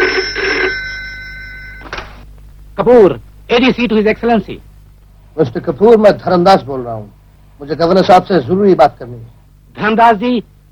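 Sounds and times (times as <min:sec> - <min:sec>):
telephone bell ringing in a bright jangling trill: 0:00.0 - 0:02.0
speech: 0:02.8 - 0:04.7, 0:05.4 - 0:10.5.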